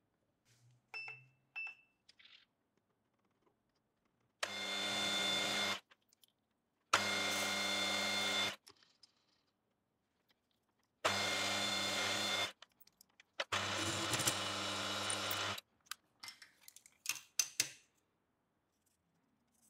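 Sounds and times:
drill boring through four stacked pieces: 0:04.4 - 0:05.8, 0:07.0 - 0:08.6, 0:11.1 - 0:12.6, 0:13.5 - 0:15.6.

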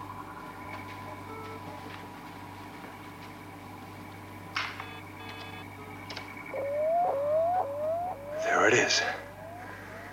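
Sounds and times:
crackly static: 0:00.0 - 0:10.1
low hum: 0:00.0 - 0:10.1
orbital satellite identification signal beeping: 0:01.2 - 0:01.8, 0:04.8 - 0:05.7, 0:06.5 - 0:10.1.

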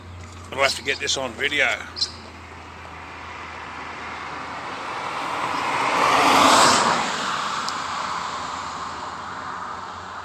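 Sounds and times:
speech: 0:00.5 - 0:02.1
car driving past: 0:02.0 - 0:09.8.

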